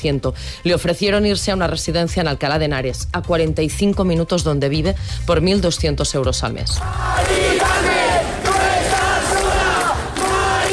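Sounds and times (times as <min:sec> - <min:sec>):
speech: 0:00.0 - 0:08.0
street protest crowd chanting at an overnight sit-in against an eviction: 0:06.8 - 0:10.7.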